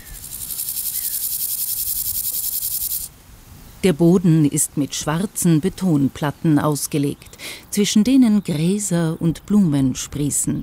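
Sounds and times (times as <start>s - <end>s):
grasshoppers chirping in grassland: 0.0s - 3.1s
speech: 3.8s - 10.6s.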